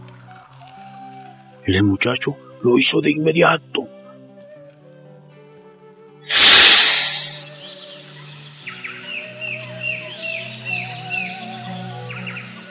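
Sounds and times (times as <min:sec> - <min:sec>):
speech: 0:01.6 - 0:03.7
sudden loud rushing burst of birds taking flight: 0:06.3 - 0:07.6.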